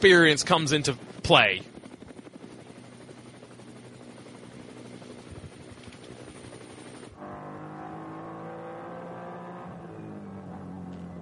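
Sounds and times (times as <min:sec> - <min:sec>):
speech: 0:00.0 - 0:01.7
race car engines roaring on a racing circuit: 0:07.2 - 0:11.1.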